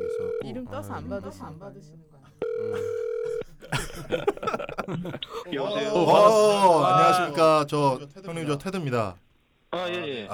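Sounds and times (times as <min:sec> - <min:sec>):
telephone ringback tone while a call connects: 0:00.0 - 0:00.6, 0:02.4 - 0:03.6
speech: 0:00.5 - 0:10.3
laughter: 0:02.6 - 0:07.5.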